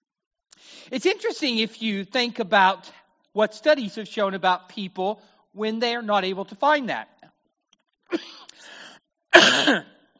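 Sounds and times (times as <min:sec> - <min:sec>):
speech: 0:00.9 - 0:07.2, 0:08.1 - 0:08.8, 0:09.4 - 0:09.9
person coughing: 0:08.1 - 0:08.5, 0:09.4 - 0:10.0
softer raspy throat-clearing burst: 0:09.4 - 0:10.0.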